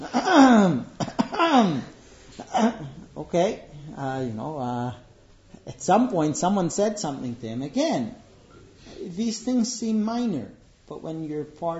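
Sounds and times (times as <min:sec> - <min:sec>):
voice imitating a man's drawn-out throat clearing: 0:00.0 - 0:03.2
speech: 0:03.3 - 0:05.0, 0:05.6 - 0:08.2, 0:09.0 - 0:11.7.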